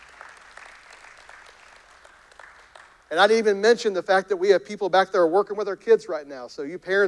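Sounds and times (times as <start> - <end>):
audience clapping: 0.0 - 3.2
speech: 3.1 - 7.0.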